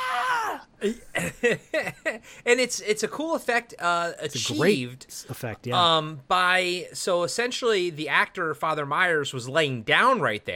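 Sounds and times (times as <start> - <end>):
man imitating a pained scream: 0.0 - 0.7
speech: 0.8 - 10.5.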